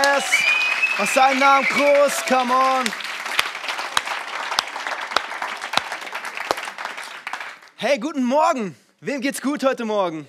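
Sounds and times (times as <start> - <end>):
audience applause: 0.0 - 7.7
speech: 0.2 - 3.0, 7.8 - 10.2.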